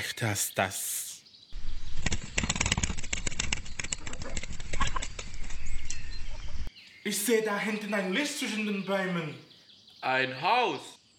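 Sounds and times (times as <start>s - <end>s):
speech: 0.0s - 1.0s, 7.1s - 11.0s
rooster wings flapping as it flies up into a tree: 1.6s - 6.7s.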